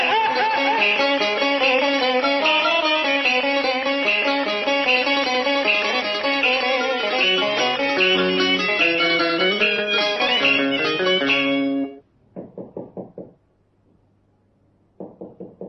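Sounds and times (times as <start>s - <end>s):
loud music: 0.0s - 12.0s
firm knocking on a door: 12.4s - 13.4s, 15.0s - 15.6s.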